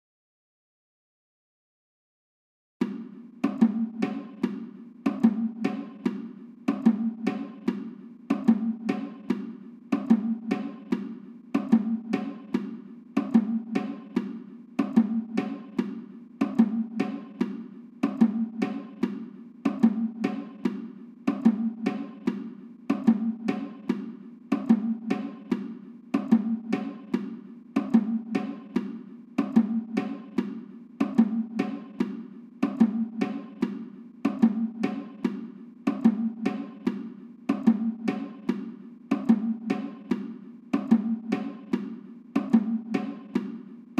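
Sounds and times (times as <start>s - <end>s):
bongos: 2.8s - 43.9s.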